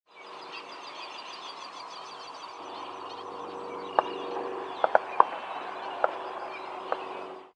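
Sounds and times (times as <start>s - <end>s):
ducks flying overhead: 0.7s - 7.5s
hunters: 2.6s - 7.3s.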